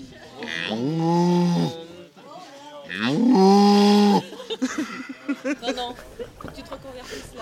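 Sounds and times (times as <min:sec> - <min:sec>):
man imitating cow mooing: 0:00.5 - 0:01.8, 0:02.9 - 0:04.2
laughter: 0:03.8 - 0:07.4.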